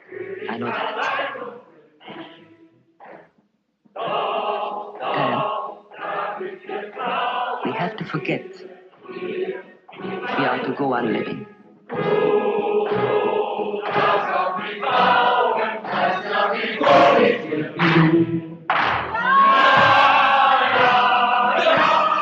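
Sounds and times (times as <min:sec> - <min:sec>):
crowd of voices singing together in German: 0:00.0 - 0:02.4, 0:04.0 - 0:22.1
speech: 0:00.5 - 0:01.1, 0:08.1 - 0:12.2.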